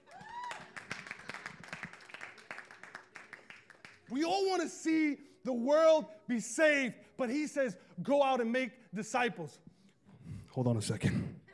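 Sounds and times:
whoop or whistle: 0.0s - 0.8s
audience clapping: 0.0s - 4.1s
speech: 4.1s - 9.6s, 10.6s - 11.2s.

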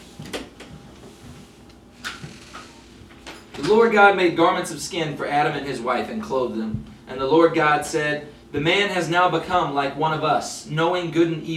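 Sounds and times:
quiet hum: 0.0s - 11.5s
door being opened or closed: 2.0s - 2.8s
speech: 3.6s - 11.5s.

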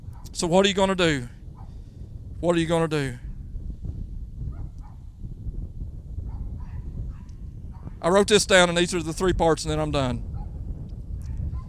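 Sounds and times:
speech: 0.4s - 1.4s, 2.4s - 3.2s, 8.0s - 10.3s
dog barking: 4.5s - 5.0s, 6.3s - 8.0s, 11.2s - 11.6s.

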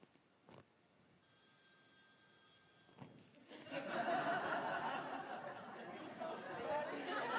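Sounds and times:
telephone ringing with thin steady electronic tones: 1.2s - 4.8s
room full of people laughing: 3.5s - 7.3s
room full of people chattering: 3.9s - 7.3s.

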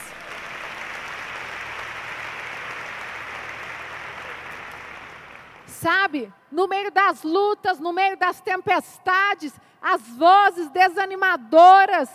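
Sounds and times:
large crowd applauding: 0.0s - 5.7s
speech: 5.8s - 12.1s.

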